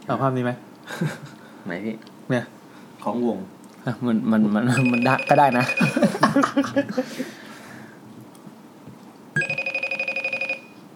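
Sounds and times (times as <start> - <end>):
speech: 0.1 - 7.4
iPhone ringtone: 4.8 - 6.1, 9.4 - 10.8
laughter: 5.6 - 7.4.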